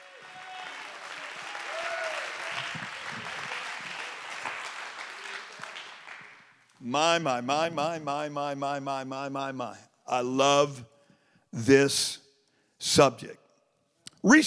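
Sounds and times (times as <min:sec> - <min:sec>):
faint scattered voices and cheers: 0:00.0 - 0:05.7
large crowd clapping in applause: 0:00.0 - 0:06.6
speech: 0:06.8 - 0:10.9, 0:11.5 - 0:12.2, 0:12.8 - 0:13.4, 0:14.2 - 0:14.4.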